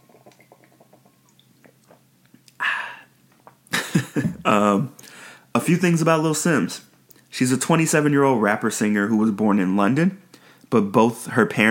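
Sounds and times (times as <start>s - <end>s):
throaty gulps of water: 0.0s - 2.7s
person slurping a sip of water: 0.0s - 3.6s
voiced satisfied exhale: 2.6s - 3.1s, 5.0s - 5.5s
speech: 4.2s - 5.0s, 5.6s - 11.6s.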